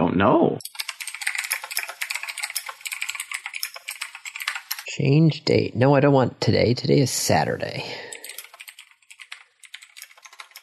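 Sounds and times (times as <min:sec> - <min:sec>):
speech: 0:00.2 - 0:00.8, 0:05.0 - 0:08.1
typing on a computer keyboard: 0:00.6 - 0:04.9, 0:08.1 - 0:10.6.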